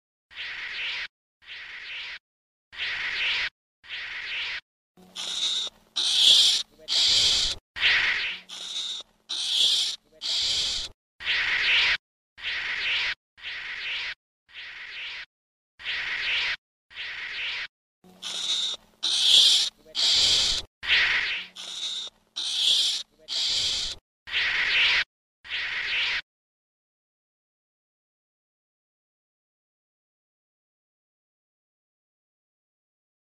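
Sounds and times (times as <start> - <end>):
ferret-badger calling: 0.3 - 2.2, 2.8 - 26.2.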